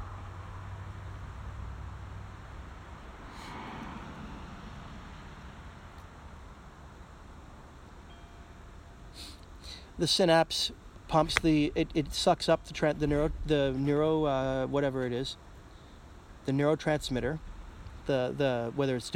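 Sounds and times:
car passing by outside: 0.0s - 6.8s
speech: 10.0s - 15.5s, 16.5s - 17.5s, 18.1s - 19.1s.

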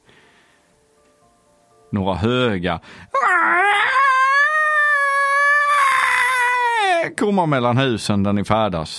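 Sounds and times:
speech: 1.9s - 3.1s, 7.2s - 8.9s
long high-pitched scream wavering in pitch: 3.2s - 7.1s.

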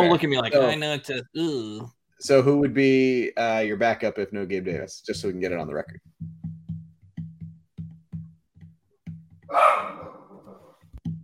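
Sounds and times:
speech: 0.0s - 6.3s
dog barking: 9.5s - 10.8s.

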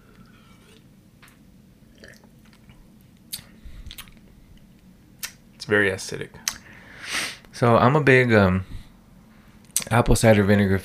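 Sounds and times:
low steady hum: 0.0s - 10.8s
person sipping kombucha: 1.9s - 4.2s
speech: 5.7s - 6.4s, 7.6s - 8.8s, 9.9s - 10.8s.

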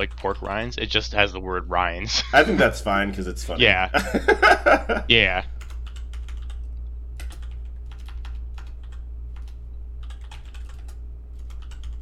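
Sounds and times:
speech: 0.0s - 5.5s
low constant hum: 0.0s - 11.9s
laughter: 2.1s - 2.9s, 3.9s - 5.4s
fast typing on a computer keyboard: 5.6s - 11.9s.

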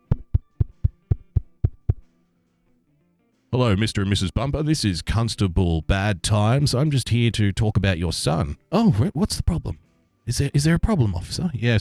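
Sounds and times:
knocking on a door: 0.1s - 2.0s
speech: 3.5s - 11.7s.

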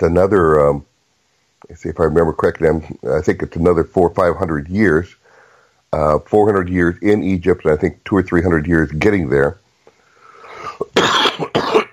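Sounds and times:
speech: 0.0s - 0.9s, 1.6s - 5.2s, 5.9s - 9.6s
person coughing: 10.6s - 11.9s.

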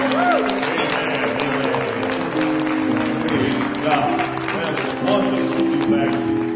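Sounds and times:
voices cheering and calling out: 0.0s - 2.1s
church audience applauding: 0.0s - 6.5s.

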